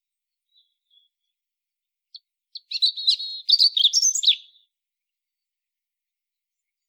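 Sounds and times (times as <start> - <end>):
European robin song phrase with warbling trills and thin whistles: 2.6 - 4.6.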